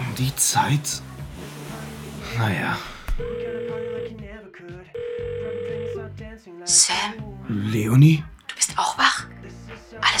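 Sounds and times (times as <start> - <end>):
speech: 0.2 - 1.6, 2.3 - 5.0, 6.4 - 10.1
electronic telephone ring tones on the line: 3.2 - 4.3, 5.0 - 6.2.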